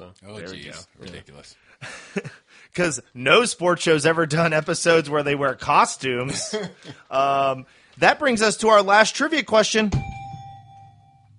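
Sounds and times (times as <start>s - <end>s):
speech: 0.2s - 10.2s
struck bell sound effect ringing: 10.0s - 11.3s.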